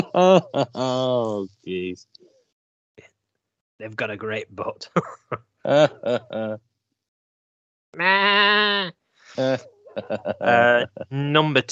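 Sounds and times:
laughter: 0.0s - 1.2s, 5.0s - 6.6s, 9.4s - 11.1s
speech: 0.2s - 2.2s, 3.8s - 6.7s, 7.9s - 11.7s
goat bleating: 8.0s - 8.9s.

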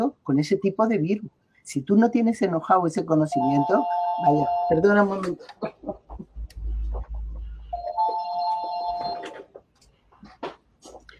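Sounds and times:
speech: 0.1s - 6.0s
telephone with electronic trill ringing: 3.3s - 5.2s, 7.7s - 9.5s.

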